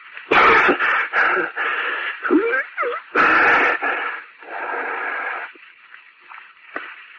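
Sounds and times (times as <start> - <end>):
person coughing violently: 0.3 - 1.6, 2.2 - 3.8
strained rasping wheezes: 0.4 - 5.6
weak gasping breaths: 0.6 - 5.6.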